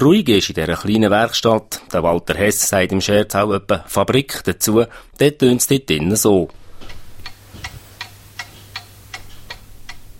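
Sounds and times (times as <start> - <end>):
speech: 0.0 - 6.6
several clocks ticking: 6.9 - 10.1.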